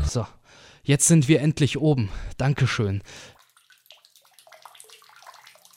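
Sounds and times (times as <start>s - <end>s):
speech: 0.1s - 3.3s
water dripping: 3.1s - 5.7s.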